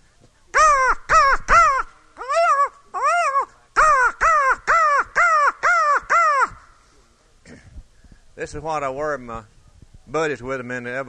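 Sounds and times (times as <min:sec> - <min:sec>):
crow cawing with harsh nasal calls: 0:00.6 - 0:06.8
speech: 0:08.4 - 0:11.0.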